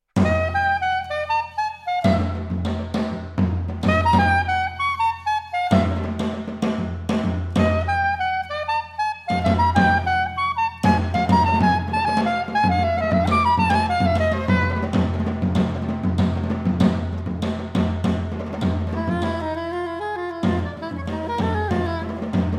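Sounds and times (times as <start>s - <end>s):
percussion: 0.1s - 22.5s
saxophone in a presto suite: 0.2s - 3.0s, 3.8s - 6.8s, 7.5s - 15.7s, 18.6s - 22.5s.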